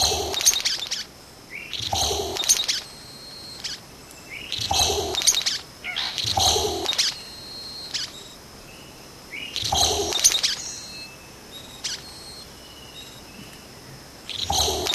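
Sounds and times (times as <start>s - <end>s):
thin high whistles: 0.0s - 1.1s, 1.7s - 13.6s
Vogelkop bowerbird rasping calls: 0.0s - 12.3s.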